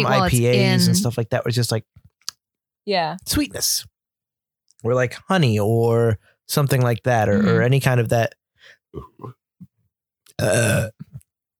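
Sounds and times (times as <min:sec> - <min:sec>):
speech: 0:00.0 - 0:02.0, 0:02.8 - 0:03.9, 0:04.8 - 0:09.4, 0:10.4 - 0:11.1
short grunting mouth noises: 0:07.2 - 0:07.7, 0:08.9 - 0:09.4, 0:10.4 - 0:11.2
loud throaty burp: 0:08.9 - 0:09.4, 0:10.4 - 0:11.2.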